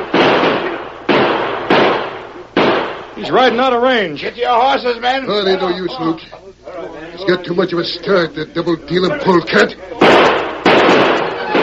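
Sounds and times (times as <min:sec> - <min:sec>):
gunshots fired at a rider fleeing after a bank robbery: 0:00.0 - 0:03.5, 0:10.0 - 0:11.6
speech: 0:03.2 - 0:10.4.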